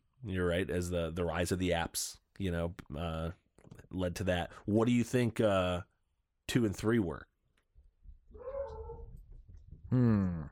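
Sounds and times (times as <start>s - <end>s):
speech: 0.2s - 5.9s, 6.5s - 7.3s, 9.9s - 10.4s
dog whining: 8.4s - 9.2s.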